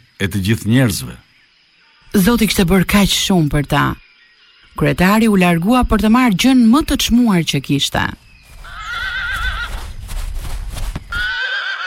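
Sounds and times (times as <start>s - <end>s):
speech: 0.2s - 1.3s, 2.1s - 4.0s, 4.8s - 8.2s
horse neighing with shrill quavering whinnies: 8.6s - 9.8s, 11.1s - 11.8s
noisy shuffling and thumping, possibly hooves: 9.4s - 11.3s.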